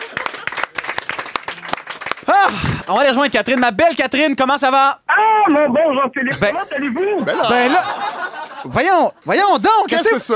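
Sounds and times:
laughter: 0:00.0 - 0:00.9, 0:06.3 - 0:09.5
TV talk-show audience applause: 0:00.0 - 0:03.6
speech: 0:02.5 - 0:10.3.

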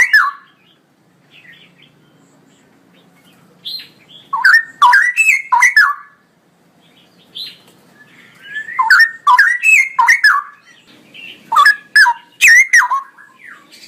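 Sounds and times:
male straw-headed bulbul singing: 0:00.0 - 0:13.8.

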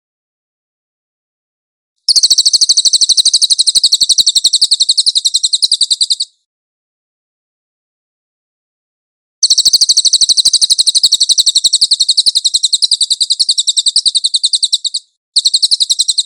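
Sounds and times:
song with quick high repeated notes: 0:02.1 - 0:06.5, 0:09.4 - 0:16.2.

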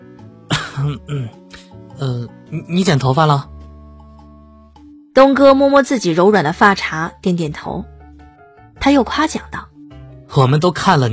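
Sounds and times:
man coughing and clearing his throat: 0:00.5 - 0:01.4
speech: 0:00.8 - 0:01.4, 0:02.0 - 0:03.5, 0:05.2 - 0:08.0, 0:08.8 - 0:09.7, 0:10.3 - 0:11.1.

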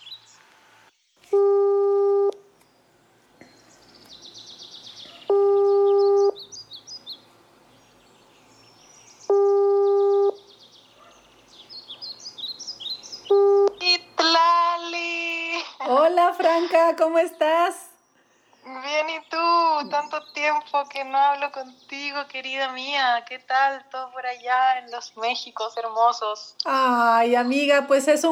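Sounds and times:
birds chirping: 0:00.0 - 0:28.3
telephone call ringing out: 0:01.4 - 0:02.3, 0:05.3 - 0:06.4, 0:09.3 - 0:10.4, 0:13.3 - 0:13.8
speech: 0:16.6 - 0:17.8, 0:18.9 - 0:28.3.

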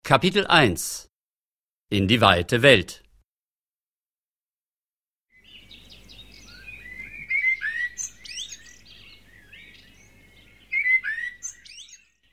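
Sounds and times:
speech: 0:00.1 - 0:01.1, 0:01.9 - 0:03.0
birds singing: 0:05.3 - 0:12.3.

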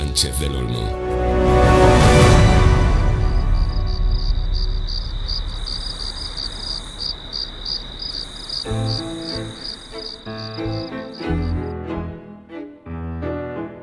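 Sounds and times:
speech: 0:00.2 - 0:01.7
crickets chirping: 0:02.9 - 0:11.7.

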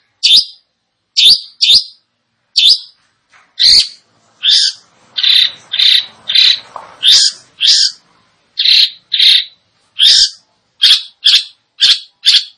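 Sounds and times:
long-tailed shrike song: 0:00.2 - 0:00.6, 0:01.2 - 0:02.0, 0:02.6 - 0:03.0, 0:03.6 - 0:08.0, 0:08.6 - 0:12.5.

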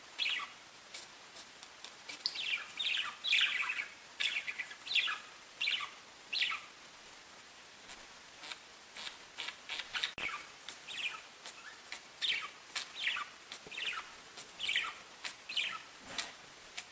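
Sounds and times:
budgerigar calling in short downward-sweeping chirps and warbles: 0:00.2 - 0:00.6, 0:02.2 - 0:06.7, 0:08.4 - 0:16.8.

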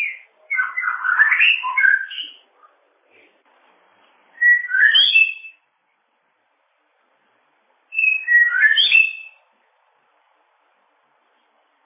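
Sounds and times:
bird whistling song: 0:00.0 - 0:02.4, 0:04.4 - 0:05.7, 0:07.9 - 0:09.5.

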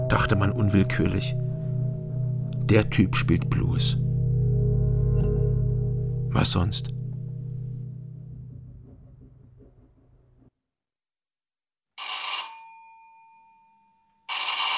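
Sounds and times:
low drone: 0:00.0 - 0:10.5
speech: 0:00.1 - 0:01.4, 0:02.7 - 0:04.0, 0:06.3 - 0:07.0
telephone ringing unanswered: 0:12.0 - 0:13.2, 0:14.3 - 0:14.7.

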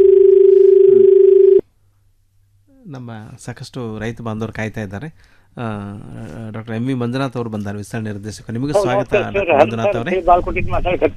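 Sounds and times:
low telephone line tone of a connecting phone-in call: 0:00.0 - 0:01.6
speech: 0:03.0 - 0:11.1.

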